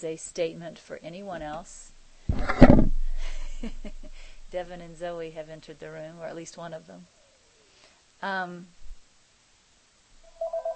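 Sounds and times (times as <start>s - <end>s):
speech: 0.0s - 2.9s, 3.6s - 7.2s, 8.2s - 8.8s
mobile phone ringtone with bright electronic tones: 10.3s - 10.7s.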